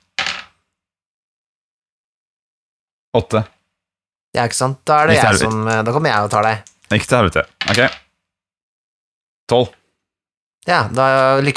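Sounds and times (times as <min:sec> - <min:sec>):
two ten-sided dice rolled onto a hard surface in a game: 0:00.2 - 0:00.6, 0:05.1 - 0:07.0, 0:07.6 - 0:08.1
speech: 0:03.1 - 0:03.6, 0:04.4 - 0:08.0, 0:09.5 - 0:09.8, 0:10.6 - 0:11.5.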